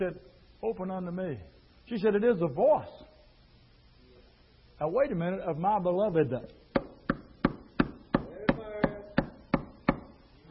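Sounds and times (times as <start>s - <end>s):
speech: 0.0s - 3.1s, 4.8s - 6.6s
hammer knocking: 6.7s - 10.1s.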